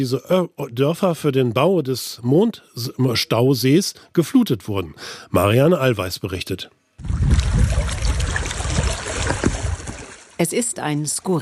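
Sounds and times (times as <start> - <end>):
speech: 0.0 - 8.1, 10.4 - 11.4
low rumble: 7.0 - 9.9
water lapping against gravestones on the Lipno reservoir shore in Czech Republic: 7.0 - 10.7.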